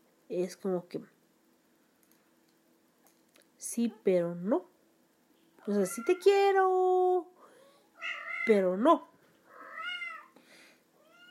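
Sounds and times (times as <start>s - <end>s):
speech: 0.3s - 1.2s, 3.7s - 4.7s, 5.6s - 7.3s, 8.5s - 9.1s
female cat meowing to other cats: 8.0s - 8.6s, 9.5s - 10.4s, 11.0s - 11.2s.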